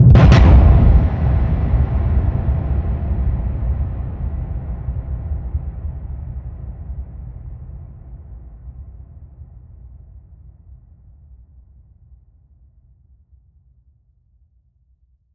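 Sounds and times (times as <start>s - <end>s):
airstrike explosions: 0.0s - 4.7s.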